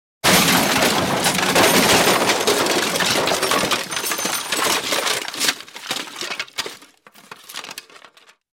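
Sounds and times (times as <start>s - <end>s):
object crashing through wood and glass: 0.2s - 8.0s.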